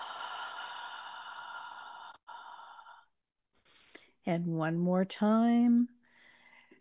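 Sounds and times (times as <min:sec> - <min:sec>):
person inhaling through nose and exhaling through mouth: 0:00.0 - 0:04.2, 0:06.0 - 0:06.7
speech: 0:04.3 - 0:06.0.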